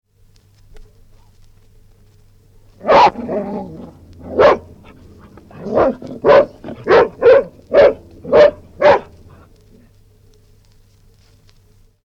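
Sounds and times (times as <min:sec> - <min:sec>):
low hum: 0:00.1 - 0:12.0
Airedale dog barking angrily: 0:02.8 - 0:09.8.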